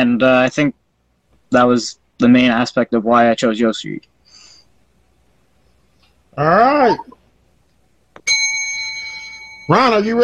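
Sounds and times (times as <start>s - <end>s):
speech: 0.0s - 0.8s, 1.5s - 4.1s, 6.4s - 7.2s, 9.7s - 10.2s
bell ringing: 8.2s - 10.2s.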